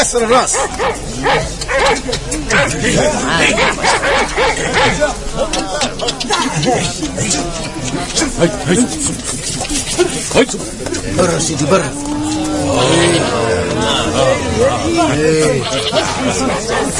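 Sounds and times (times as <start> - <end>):
speech: 0.0 - 16.9
laughter: 0.2 - 16.9
several dogs barking and yipping: 0.3 - 6.8, 15.7 - 16.9.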